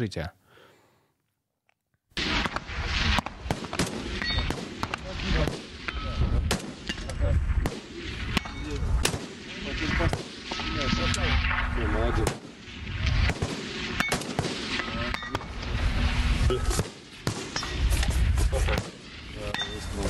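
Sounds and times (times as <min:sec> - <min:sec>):
speech: 0:00.0 - 0:00.4, 0:10.8 - 0:12.4
steady roar of outdoor noise: 0:01.1 - 0:20.0
sniper rifle shots at a firing range: 0:02.2 - 0:17.8, 0:18.6 - 0:19.4.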